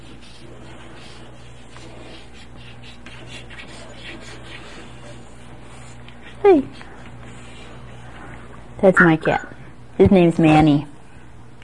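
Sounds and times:
pencil scratching on paper while a child draws a cat: 0:00.0 - 0:08.0
speech: 0:06.5 - 0:06.8, 0:08.8 - 0:10.9.

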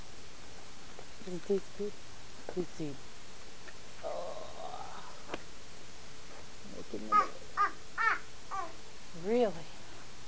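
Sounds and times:
speech: 0:01.2 - 0:03.1, 0:06.8 - 0:07.8, 0:09.2 - 0:09.8
crow cawing harshly: 0:07.1 - 0:08.8.

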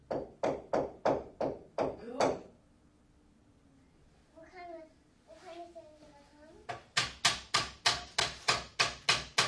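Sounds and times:
hammer striking nails in a workshop: 0:00.1 - 0:02.5, 0:06.7 - 0:09.4
child speaking: 0:04.3 - 0:06.7.

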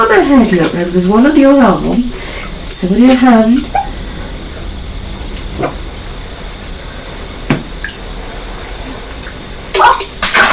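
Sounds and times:
water splashing in a bath: 0:00.0 - 0:03.8, 0:07.5 - 0:10.5
speech: 0:00.2 - 0:03.8.

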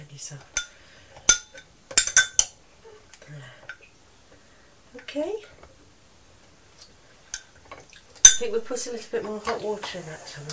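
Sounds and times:
speech: 0:00.2 - 0:00.6, 0:03.3 - 0:03.6, 0:04.9 - 0:05.6, 0:08.4 - 0:10.5
long-handled metal spoon stirring in a very hot pan: 0:01.3 - 0:02.5.

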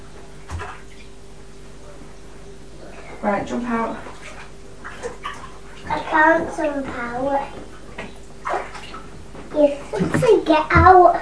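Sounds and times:
faint steady hum: 0:00.0 - 0:11.2
hot bath water splashing: 0:00.4 - 0:01.1, 0:03.2 - 0:11.2
speech: 0:03.2 - 0:04.1, 0:05.9 - 0:07.7, 0:09.6 - 0:11.2.

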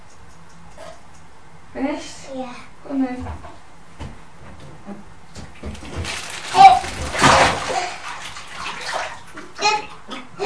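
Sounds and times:
speech: 0:01.7 - 0:03.6
water sloshing and splashing in a bathtub: 0:05.4 - 0:10.4
child talking softly: 0:09.6 - 0:10.4.

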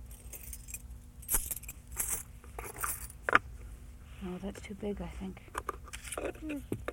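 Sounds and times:
metal keys jangling into a box: 0:00.0 - 0:03.2
speech: 0:04.3 - 0:05.6, 0:06.2 - 0:06.8.

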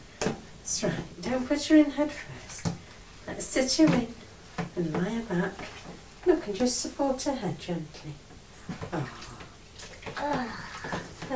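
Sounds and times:
speech: 0:00.7 - 0:02.6, 0:03.3 - 0:04.2, 0:04.8 - 0:09.3, 0:10.2 - 0:10.6
water splashing in a bubble bath as a baby is bathed: 0:02.4 - 0:07.3, 0:07.9 - 0:11.3.

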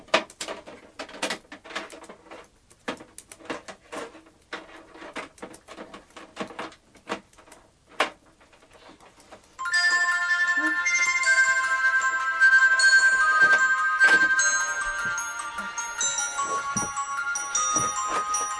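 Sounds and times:
mobile phone ringtone playing a bright melodic electronic tune: 0:09.6 - 0:18.5.

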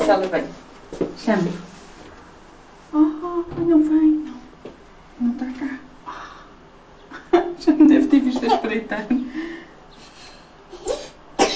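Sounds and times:
speech: 0:00.1 - 0:01.8, 0:02.9 - 0:04.4, 0:05.2 - 0:06.2, 0:07.6 - 0:09.6
child coughing: 0:10.7 - 0:11.5.

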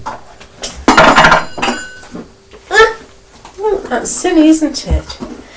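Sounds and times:
child banging a spoon on a table: 0:00.9 - 0:02.1
speech: 0:03.9 - 0:05.3.

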